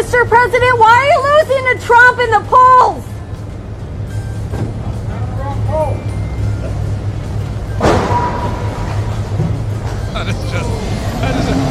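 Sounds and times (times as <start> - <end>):
engine and traffic rumble: 0.0 - 11.6
speech: 0.1 - 3.1, 10.2 - 11.6
brief squealing tones: 5.3 - 11.6
car crash impact: 7.8 - 9.5.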